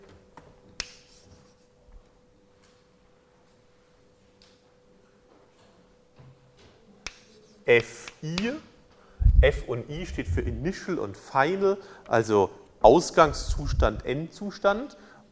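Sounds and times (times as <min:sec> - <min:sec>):
writing on a board during a lecture: 0:00.8 - 0:01.8, 0:07.0 - 0:08.2
speech: 0:07.7 - 0:08.7, 0:09.4 - 0:15.3
steady low hum: 0:09.2 - 0:10.8, 0:13.2 - 0:14.2.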